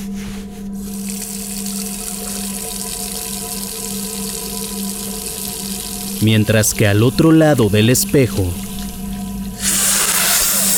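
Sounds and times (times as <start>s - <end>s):
tap water running into a bathroom sink while someone washes: 0.9s - 6.2s
speech: 6.2s - 8.6s.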